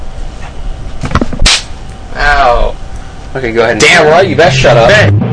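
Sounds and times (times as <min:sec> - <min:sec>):
sharp loud slap against skin: 0:01.0 - 0:01.7
speech: 0:03.4 - 0:05.2.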